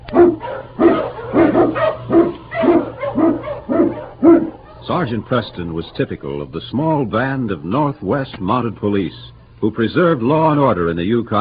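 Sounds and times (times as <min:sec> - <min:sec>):
faint low hum: 0:00.0 - 0:11.3
husky sled lead dog barking: 0:00.1 - 0:04.8
speech: 0:04.9 - 0:11.3.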